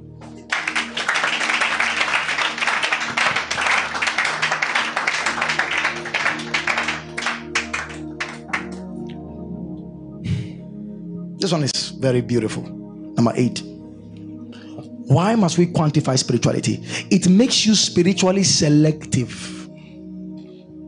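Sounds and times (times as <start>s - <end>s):
audience clapping at a religious teaching session: 0.2s - 8.9s
speech: 11.5s - 13.7s, 15.1s - 19.6s.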